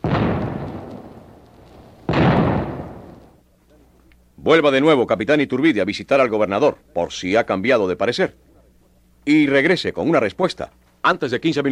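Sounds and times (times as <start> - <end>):
booming warning shots: 0.0 - 3.4
long rolling echo of shots: 0.0 - 3.4
speech: 4.4 - 8.4, 9.2 - 11.7.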